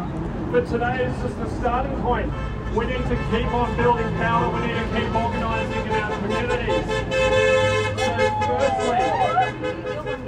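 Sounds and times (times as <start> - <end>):
crowd murmuring: 0.0 - 10.2
steady street rumble: 0.0 - 10.2
speech: 0.5 - 7.4
car horns honking from passing traffic: 2.1 - 10.2.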